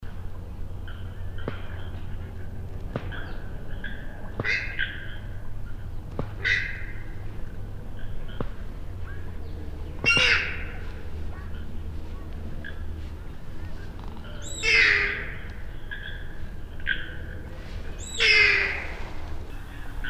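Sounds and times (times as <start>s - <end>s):
Purple Swamphen calling: 3.1s - 5.4s, 6.4s - 7.3s, 9.1s - 11.8s, 12.6s - 20.0s.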